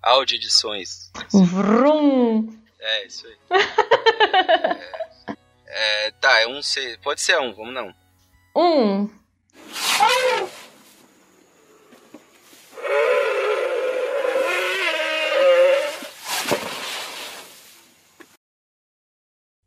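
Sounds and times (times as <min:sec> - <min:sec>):
speech: 0:00.0 - 0:05.0, 0:05.8 - 0:10.6
laughter: 0:03.5 - 0:05.4
elephant trumpeting: 0:09.6 - 0:10.8, 0:12.7 - 0:17.5.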